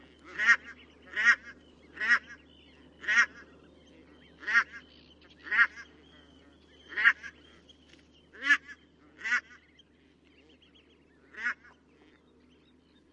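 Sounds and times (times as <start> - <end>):
barnacle goose honking: 0.1 - 2.4, 3.0 - 3.5, 5.4 - 7.5, 8.3 - 9.6.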